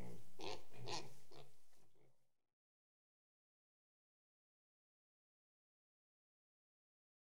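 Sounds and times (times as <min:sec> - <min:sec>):
pigs grunting in a shed: 0:00.0 - 0:01.5.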